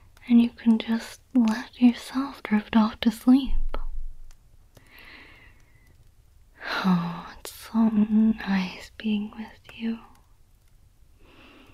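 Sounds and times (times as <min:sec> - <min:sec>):
speech: 0:00.5 - 0:03.6, 0:06.7 - 0:10.1
single long soft breath: 0:04.8 - 0:05.9, 0:11.2 - 0:11.7.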